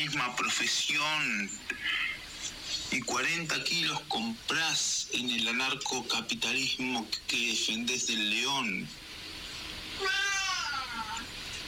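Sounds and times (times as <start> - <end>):
speech: 0.0 - 9.0
faint hiss: 0.0 - 11.6
cat meowing: 10.0 - 11.2.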